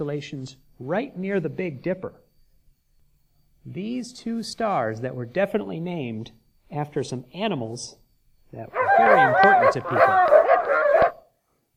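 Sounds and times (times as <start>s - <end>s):
speech: 0.0s - 2.2s, 3.6s - 10.4s
dog barking, drawn out and whiny: 8.7s - 11.3s.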